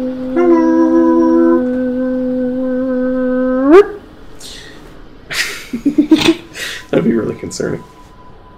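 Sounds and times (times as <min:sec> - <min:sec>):
dog howling: 0:00.0 - 0:04.0
speech: 0:03.7 - 0:04.0, 0:07.4 - 0:08.0
laughter: 0:05.3 - 0:06.4.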